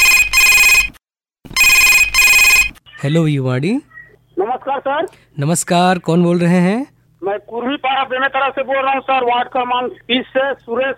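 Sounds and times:
telephone ringing with electronic double-ring bursts: 0.0 - 0.9, 1.6 - 2.8
speech: 3.0 - 10.9.

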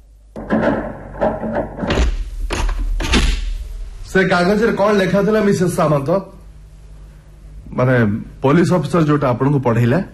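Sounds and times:
door thudding shut in a house: 0.4 - 3.6
speech: 4.2 - 6.4, 7.8 - 10.1.

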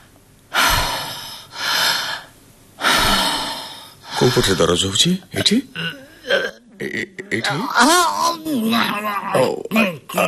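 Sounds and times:
person taking deep forceful breaths while being checked over: 0.5 - 4.7
speech: 4.2 - 6.0, 7.4 - 10.2.

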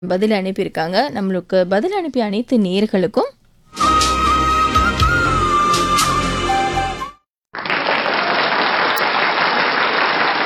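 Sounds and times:
speech: 0.0 - 3.9
music: 3.7 - 7.3
applause: 7.5 - 10.4.

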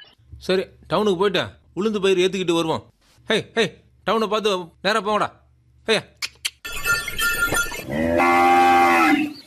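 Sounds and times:
speech: 0.5 - 6.1, 7.9 - 8.5
cattle mooing beside a bullock cart: 7.9 - 9.3.

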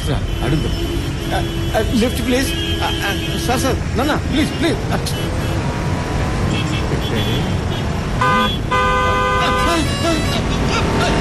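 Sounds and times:
car horn honking: 0.0 - 3.8, 6.5 - 11.2
road and engine noise: 0.0 - 11.2
speech: 0.1 - 5.4, 7.1 - 8.8.

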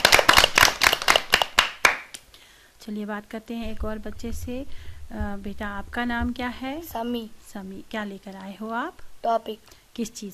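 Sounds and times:
group of children clapping: 0.0 - 2.3
speech: 2.9 - 10.3.

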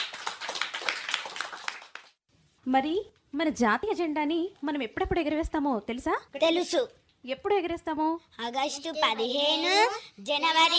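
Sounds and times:
many children clapping for classmates who sang a flag song: 0.0 - 2.2
speech: 2.6 - 10.7.

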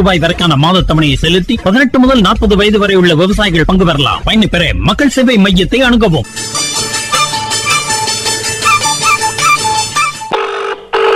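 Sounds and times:
speech: 0.0 - 6.6
telephone ringing with melodic ringtone, unanswered: 6.3 - 10.6.

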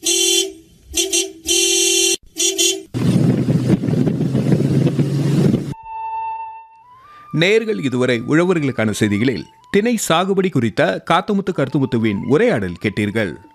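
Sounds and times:
vehicle horn tooting: 0.0 - 2.9
vehicle engine roaring as the vehicle drives off: 2.9 - 5.8
speech: 7.4 - 13.5.

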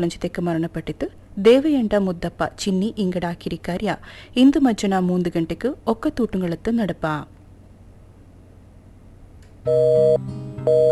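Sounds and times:
speech: 0.0 - 7.4, 9.6 - 10.9
telephone busy tone beeps: 9.7 - 10.9.

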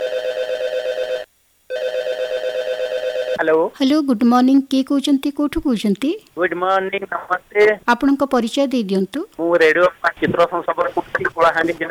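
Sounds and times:
telephone ringing as a caller dials in: 0.0 - 3.4
speech: 3.4 - 11.9.

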